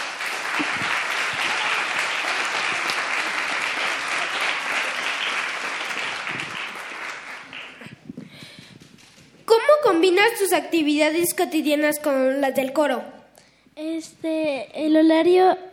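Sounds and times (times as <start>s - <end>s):
audience applause: 0.0s - 8.1s
speech: 10.1s - 13.2s, 13.8s - 15.7s.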